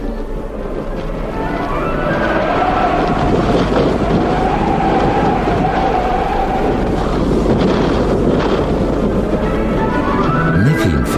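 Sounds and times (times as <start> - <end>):
thunderstorm rain: 0.0 - 10.6
thunderstorm wind: 0.0 - 11.1
low thunder rumble: 2.0 - 10.6.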